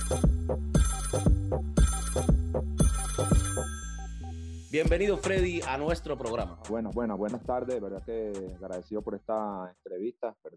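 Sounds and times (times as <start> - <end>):
telephone ringtone for an incoming call: 0.0 - 4.4
speech: 0.1 - 0.3, 4.8 - 10.5.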